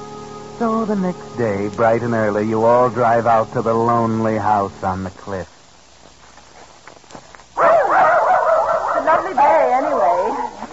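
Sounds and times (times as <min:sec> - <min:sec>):
speech: 0:00.6 - 0:05.6
dog barking and yelping while running around an old house on a cliff: 0:07.6 - 0:10.7.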